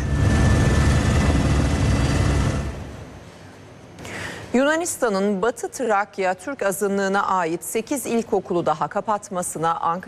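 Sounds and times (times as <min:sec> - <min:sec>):
firefighting helicopters rotor noise: 0:00.0 - 0:03.0
water-bombing aircraft engines rumbling: 0:00.0 - 0:03.4
speech: 0:04.5 - 0:10.0.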